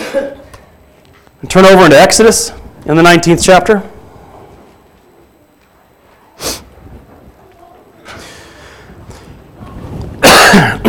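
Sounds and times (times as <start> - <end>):
preacher coughing from a cold: 0.0 - 0.5, 10.2 - 10.8
speech: 0.2 - 0.5, 1.4 - 3.9
preacher clearing throat: 10.2 - 10.8.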